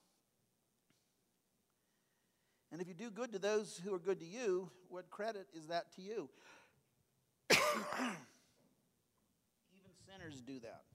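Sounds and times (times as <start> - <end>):
speech: 2.7 - 6.6, 7.7 - 8.3, 10.1 - 10.9
person coughing and gagging: 7.5 - 8.4.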